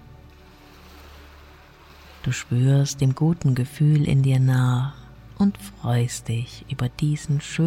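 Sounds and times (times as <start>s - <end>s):
ocean surf washing onto a shore: 0.0s - 3.5s
speech: 2.2s - 7.6s.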